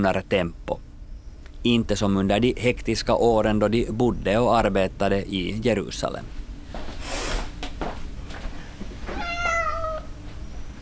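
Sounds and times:
speech: 0.0 - 0.8, 1.6 - 6.4
former stable cat meowing: 9.1 - 10.2.

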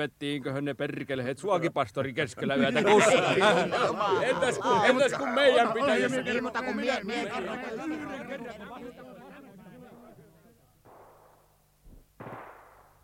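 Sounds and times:
speech: 0.0 - 9.0
laughter: 2.4 - 10.6
exchange of gunfire at the front line: 10.9 - 13.0.

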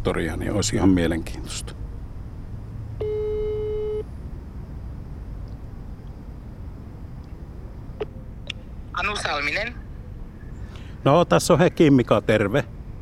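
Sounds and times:
speech: 0.0 - 1.8, 9.1 - 9.8, 11.0 - 12.7
telephone ringback tone while calling: 3.0 - 4.0.

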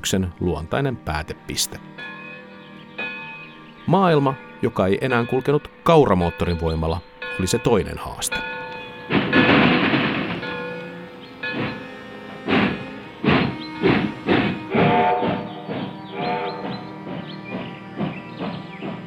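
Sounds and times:
speech: 0.0 - 2.2, 3.9 - 9.2
steam train on a railway chuffing: 8.9 - 19.0.

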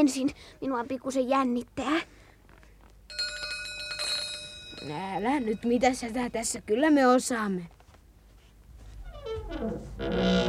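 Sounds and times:
speech: 0.0 - 2.2, 4.8 - 7.8
house doorbell ringing with a bright metallic buzzing trill: 3.1 - 6.0.

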